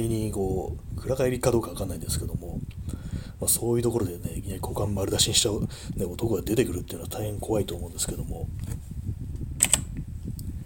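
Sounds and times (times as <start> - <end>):
speech: 0.0 - 2.8, 3.4 - 8.9
steady low hum: 0.0 - 10.6
computer keyboard tapped to wake the screen: 9.6 - 9.8.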